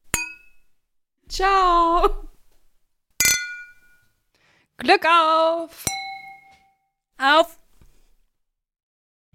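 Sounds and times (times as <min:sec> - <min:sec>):
glasses clinking in a toast: 0:00.2 - 0:00.7, 0:03.2 - 0:04.1, 0:05.8 - 0:06.8
speech: 0:01.4 - 0:02.2, 0:04.8 - 0:06.0, 0:07.2 - 0:07.6.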